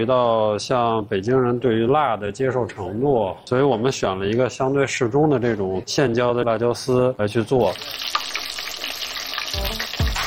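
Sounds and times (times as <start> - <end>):
speech: 0.0 - 8.3
battered chicken tendons deep-frying in hot oil: 7.6 - 10.2.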